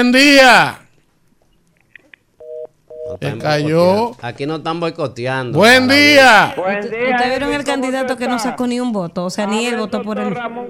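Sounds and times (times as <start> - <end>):
speech: 0.0 - 0.8, 3.1 - 10.6
faint phone line beeps: 2.4 - 3.2
telephone line ringing tones: 2.4 - 3.4.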